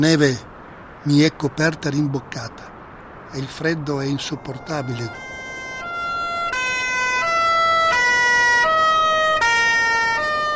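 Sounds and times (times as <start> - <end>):
speech: 0.0 - 2.7, 3.3 - 5.3
emergency vehicle sirens alternating high and low tones: 4.1 - 10.5.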